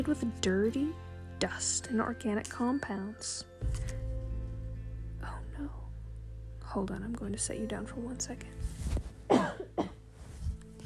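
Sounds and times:
speech: 0.0s - 4.0s, 6.7s - 8.7s
faint low rumbling: 3.6s - 9.3s
person coughing: 9.3s - 10.0s.

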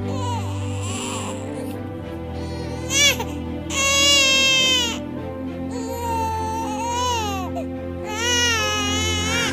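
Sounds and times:
newborn baby crying: 0.0s - 1.8s, 2.4s - 5.0s, 5.6s - 9.5s.

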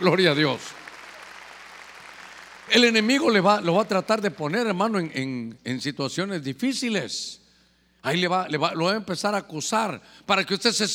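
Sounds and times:
speech: 0.0s - 0.8s, 2.7s - 7.4s, 8.0s - 10.9s
congregation clapping: 0.0s - 5.0s.

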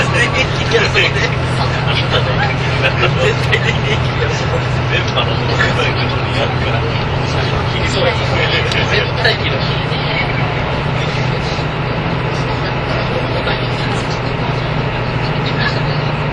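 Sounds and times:
laughter: 0.0s - 16.2s
murmured voices: 0.0s - 16.3s
vehicle engine drone and rumble on journey from Nagoya to Toyama: 0.0s - 16.3s.

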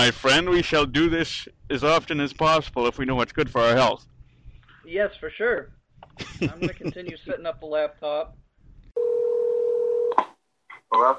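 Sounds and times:
speech: 0.0s - 4.1s, 4.8s - 8.4s, 10.2s - 11.1s
steady telephone tone: 9.0s - 10.2s.

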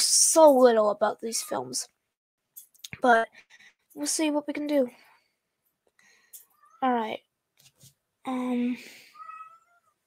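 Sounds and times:
speech: 0.4s - 2.0s, 3.0s - 3.4s, 4.0s - 5.0s, 6.8s - 7.3s, 8.2s - 9.0s
cat meowing: 9.1s - 10.0s.

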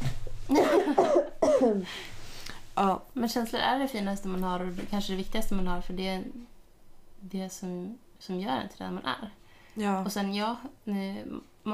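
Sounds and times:
speech: 0.5s - 1.1s, 1.8s - 2.1s, 2.8s - 6.5s, 7.2s - 11.7s
loud coughing: 0.5s - 1.9s.

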